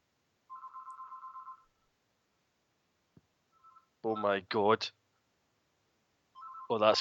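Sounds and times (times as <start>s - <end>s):
phone ringing with a warbling tone: 0.5s - 1.7s, 3.5s - 4.3s, 6.4s - 6.9s
speech: 4.0s - 5.0s, 6.7s - 6.9s.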